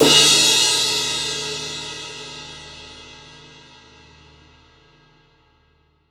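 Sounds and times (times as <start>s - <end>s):
18-inch crash cymbal struck powerfully on the edge: 0.0s - 3.4s.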